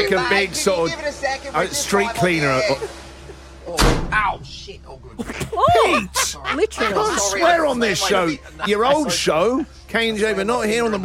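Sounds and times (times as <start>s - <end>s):
speech: 0.0s - 3.0s, 3.7s - 11.0s
laughter: 2.1s - 3.8s, 5.0s - 9.7s
heavy old door slamming shut: 3.8s - 4.4s.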